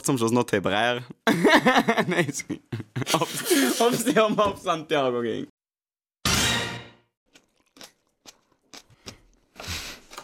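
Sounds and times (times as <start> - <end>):
speech: 0.0 - 5.6
laughter: 1.2 - 4.4
person biting into and chewing a tomato in a studio: 7.3 - 10.2.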